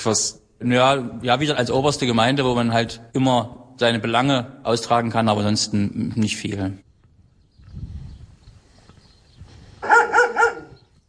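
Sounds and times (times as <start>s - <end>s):
speech: 0.0s - 6.8s
dogs barking: 9.8s - 10.9s.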